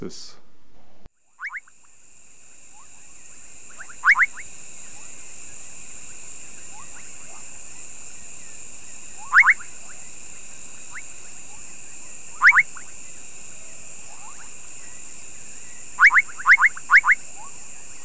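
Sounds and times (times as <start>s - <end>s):
Kassina senegalensis frog calling: 1.1s - 18.0s.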